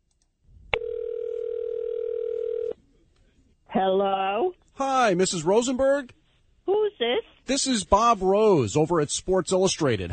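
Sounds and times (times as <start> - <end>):
telephone dial tone on an outgoing call: 0.8 - 2.8
speech: 3.8 - 10.1.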